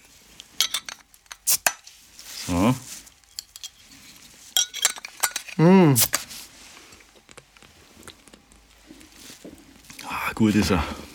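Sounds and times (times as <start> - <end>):
glasses clinking in a toast: 0.6 - 1.0, 4.5 - 5.6
speech: 2.5 - 2.9, 5.6 - 6.2, 10.4 - 11.0.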